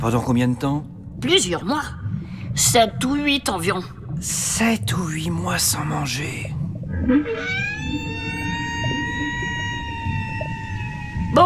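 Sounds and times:
speech: 0.0s - 2.0s, 2.6s - 7.7s
low murky underwater rumble: 0.0s - 11.4s
whale calling underwater: 6.6s - 11.4s.

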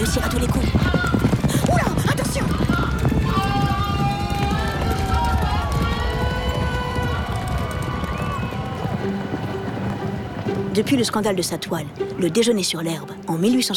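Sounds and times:
speech: 0.0s - 1.2s, 10.8s - 13.7s
crowd shouting and cheering at a race: 0.0s - 10.7s
galloping horse hooves at a race: 0.0s - 12.4s.

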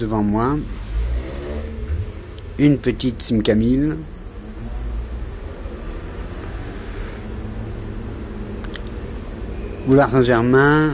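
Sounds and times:
speech: 0.0s - 0.8s, 2.6s - 4.1s, 9.8s - 10.9s
city street traffic with cars and taxis: 0.0s - 10.9s.

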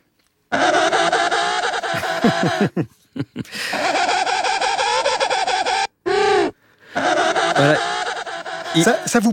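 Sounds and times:
penguin braying call with dissonant guitar-like tone: 0.5s - 2.7s, 3.7s - 9.3s
laughter: 1.9s - 4.4s, 7.0s - 9.2s
speech: 2.2s - 3.8s, 7.6s - 7.9s, 8.7s - 9.3s.

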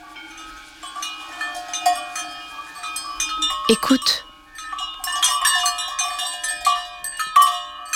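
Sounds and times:
cowbells clanking and jingling on grazing cows: 0.0s - 7.9s
speech: 3.7s - 4.3s.

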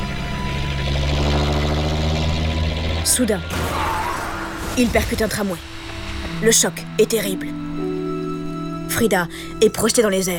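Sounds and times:
coach engine droning while driving fast through wet streets: 0.0s - 6.9s
speech: 3.1s - 3.7s, 4.8s - 5.8s, 6.4s - 7.7s, 8.9s - 10.3s.

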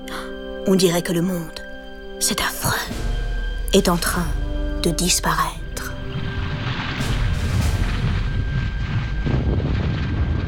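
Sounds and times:
speech: 0.7s - 1.6s, 2.2s - 3.0s, 3.7s - 5.6s
volcanic eruption roar with heavy rumbling: 6.2s - 10.4s.

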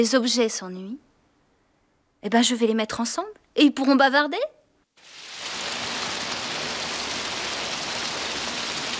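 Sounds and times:
speech: 0.0s - 1.1s, 2.2s - 5.2s
steady rain: 5.0s - 8.9s.

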